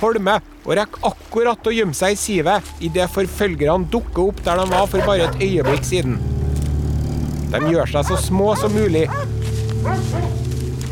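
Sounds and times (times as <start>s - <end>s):
speech: 0.0s - 6.3s, 7.5s - 10.4s
low droning rumble: 1.6s - 10.9s
wolf-like dogs snarling and barking on the bank of icy water at night: 4.4s - 10.6s.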